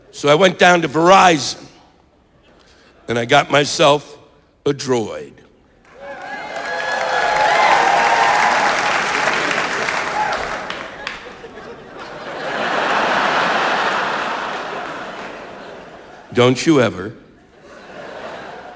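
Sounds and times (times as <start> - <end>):
speech: 0.1 - 1.7, 3.1 - 5.4, 16.4 - 17.2
audience clapping: 5.9 - 11.8, 12.4 - 16.0
laughter: 9.1 - 16.3, 17.4 - 18.7.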